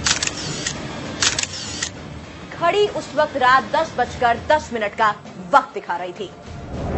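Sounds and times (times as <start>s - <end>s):
camera shutter clicks: 0.0s - 1.9s
speech: 2.6s - 6.8s.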